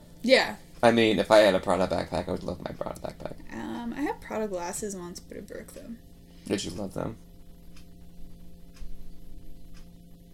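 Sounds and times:
low constant electrical hum: 0.0s - 10.3s
speech: 0.2s - 7.3s
clock ticking: 5.2s - 6.0s.

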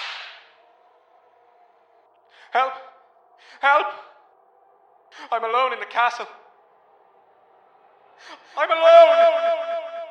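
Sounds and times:
whip crack: 0.0s - 0.6s
speech: 2.6s - 2.9s, 3.6s - 4.1s, 5.2s - 6.4s, 8.5s - 9.8s.

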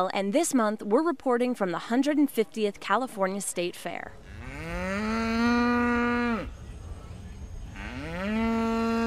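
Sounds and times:
speech: 0.0s - 4.4s
cow mooing in a livestock building at a state fair: 4.2s - 6.5s, 7.8s - 9.0s.

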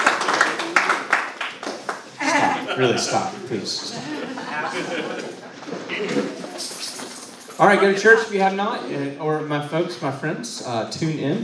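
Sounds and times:
audience applauding: 0.0s - 2.7s
laughter: 2.1s - 6.7s
speech: 2.3s - 7.0s, 7.6s - 11.4s.

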